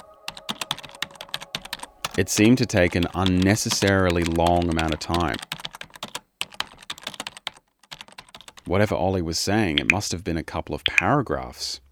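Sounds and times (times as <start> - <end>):
typing on a computer keyboard: 0.0 - 8.7
speech: 2.2 - 5.6, 8.7 - 11.8.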